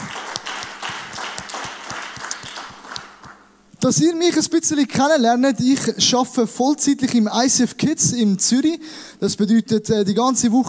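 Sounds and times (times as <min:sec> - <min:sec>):
audience applauding in a large room: 0:00.0 - 0:03.4
speech: 0:03.8 - 0:10.6.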